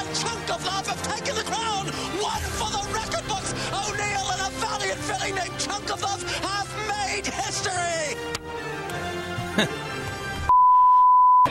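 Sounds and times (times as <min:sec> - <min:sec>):
broadcast voice: 0:00.0 - 0:08.3
speech: 0:09.6 - 0:09.8
censor bleep covering a product mention: 0:10.5 - 0:11.4.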